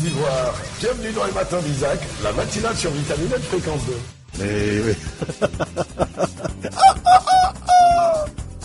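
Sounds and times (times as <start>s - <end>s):
speech: 0.1s - 8.4s
laughter: 4.8s - 8.3s
rooster clucking: 6.7s - 8.3s.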